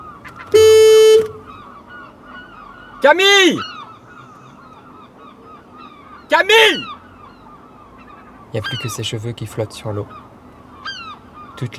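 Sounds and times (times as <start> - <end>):
faint noise: 0.0 - 11.7
bright brassy horn blast: 0.6 - 1.5
speech: 3.0 - 3.7, 6.5 - 6.9, 8.5 - 10.2, 11.6 - 11.7.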